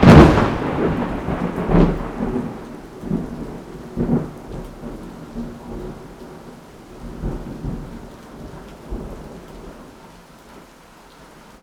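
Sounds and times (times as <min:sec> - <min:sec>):
thunder from lightning strike: 0:00.0 - 0:04.9.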